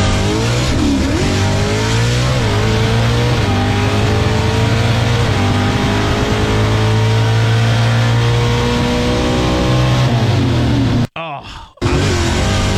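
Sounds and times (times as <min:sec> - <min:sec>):
pro stock drag racing car launching off the line: 0:00.0 - 0:11.1, 0:11.8 - 0:12.7.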